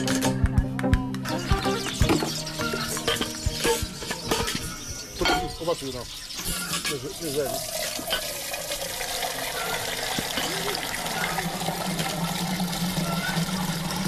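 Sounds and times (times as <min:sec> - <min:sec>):
voices talking: 0:00.2 - 0:07.8, 0:09.2 - 0:14.0
milk pouring into an old-fashioned metal milk can at a dairy in Nigeria: 0:07.0 - 0:14.0.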